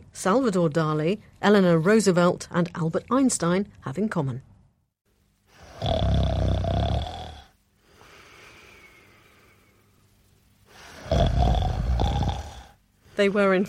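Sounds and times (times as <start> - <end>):
speech: 0.2 - 4.5, 13.2 - 13.6
loud raspy snoring with rumbling inhales and breathy exhale: 5.6 - 7.6, 10.9 - 12.8.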